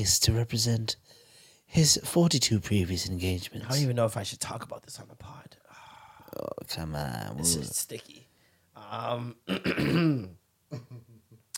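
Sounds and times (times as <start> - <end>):
speech: 0.0 - 5.6, 6.3 - 11.1
man clearing throat: 9.5 - 11.1.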